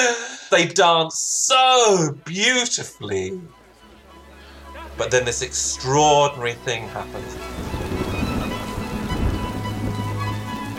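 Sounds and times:
speech: 0.0 - 3.6, 4.9 - 7.8
steady rain falling: 3.2 - 10.7
low rumble: 7.0 - 10.7.

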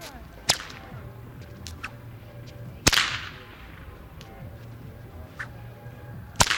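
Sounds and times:
long whip cracking with echo off buildings in a plaza: 0.0 - 1.0, 2.8 - 4.3, 6.4 - 6.5
low steady rumble in a plaza: 0.0 - 6.5.

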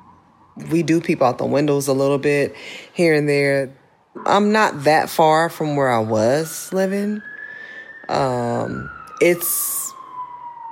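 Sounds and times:
emergency siren passing on the street outside an apartment in Deep East Oakland: 0.0 - 3.0, 3.6 - 10.7
speech: 0.6 - 7.3, 8.1 - 9.8.

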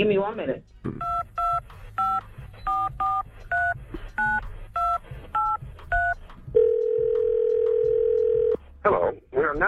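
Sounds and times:
speech: 0.0 - 1.2
telephone touch-tone dialing beeps: 1.0 - 8.6.

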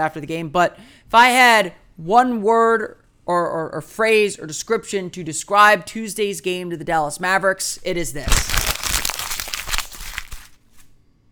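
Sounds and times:
speech: 0.0 - 8.7
sheet of paper crinkling as it is balled up: 7.8 - 11.0.

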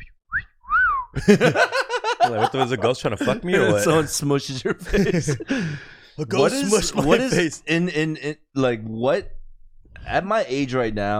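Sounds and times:
person imitating a whistle heard in a gym: 0.3 - 1.2
laughter: 1.2 - 7.6
speech: 1.2 - 9.4, 10.0 - 11.1.

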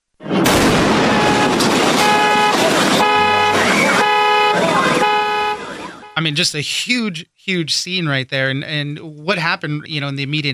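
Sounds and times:
loud fireworks explosion: 0.2 - 5.1
triggered car alarms blaring: 0.9 - 6.2
speech: 6.2 - 10.5.

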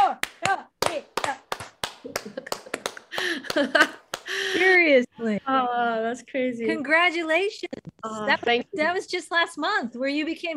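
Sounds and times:
slow clap of sharp handclaps: 0.0 - 4.4
speech: 3.6 - 4.0, 4.8 - 10.5.

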